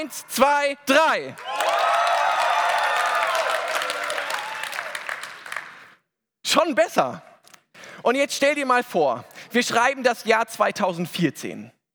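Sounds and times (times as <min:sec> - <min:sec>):
speech: 0:00.0 - 0:01.8, 0:06.5 - 0:07.3, 0:08.0 - 0:11.8
dense applause: 0:01.0 - 0:06.0
crowd cheering and whooping: 0:01.4 - 0:05.6.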